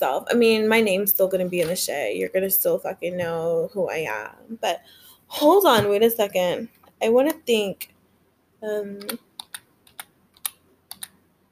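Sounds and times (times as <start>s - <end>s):
speech: 0.0s - 7.9s, 8.6s - 9.3s
one hand typing on a computer keyboard: 9.0s - 11.2s.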